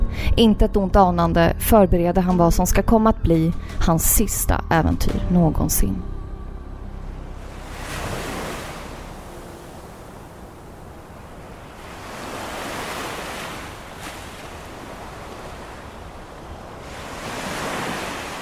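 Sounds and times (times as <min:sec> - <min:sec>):
speech: 0:00.4 - 0:06.2
Pacific Ocean surf waves crashing off the coast of Panama: 0:07.0 - 0:18.3
constant windy hiss: 0:07.5 - 0:18.3.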